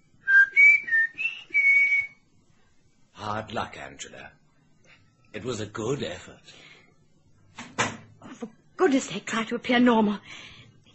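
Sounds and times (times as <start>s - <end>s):
person whistling a short tune: 0.2s - 2.2s
speech: 3.4s - 4.4s, 5.3s - 6.7s, 8.4s - 10.9s.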